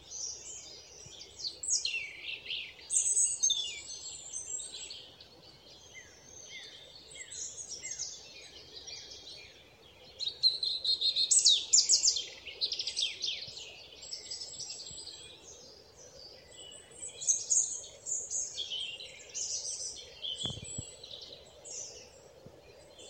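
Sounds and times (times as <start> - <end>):
European robin Erithacus rubecula singing: 0.0 - 23.0.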